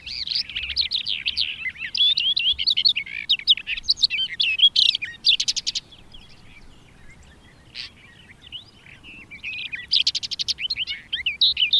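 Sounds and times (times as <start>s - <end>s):
Barred warbler song: 0.0s - 11.7s.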